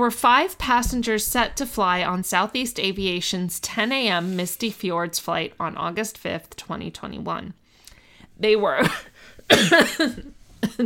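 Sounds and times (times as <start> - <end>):
speech: 0.0 - 7.6, 8.4 - 10.8
harsh coughing fit: 8.8 - 10.8.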